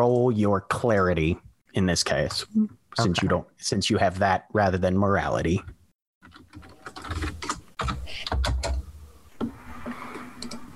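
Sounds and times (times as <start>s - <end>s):
speech: 0.0s - 6.7s
typing on a computer keyboard: 6.2s - 8.8s.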